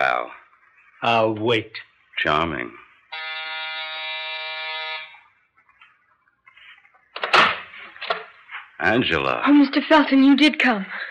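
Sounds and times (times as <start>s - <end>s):
speech: 1.0s - 2.8s, 8.9s - 11.1s
electric apartment door buzzer ringing: 3.2s - 5.1s.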